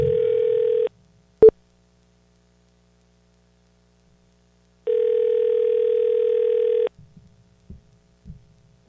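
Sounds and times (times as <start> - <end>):
faint low thumps: 0.0 - 0.4, 7.0 - 8.8
outgoing call telephone line tone over a glitchy phone connection: 0.0 - 0.9, 4.9 - 6.9.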